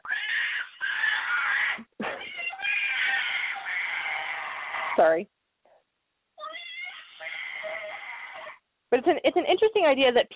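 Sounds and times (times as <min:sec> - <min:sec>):
toddler screaming: 0:00.0 - 0:05.0, 0:06.4 - 0:08.6
speech: 0:05.0 - 0:05.4, 0:08.9 - 0:10.3.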